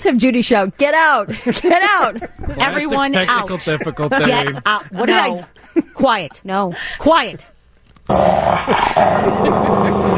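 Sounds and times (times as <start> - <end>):
speech: 0.0 - 7.5, 8.1 - 10.1
laughter: 1.3 - 6.1, 8.7 - 10.1
person voicing a harsh snarling growl: 8.1 - 10.1.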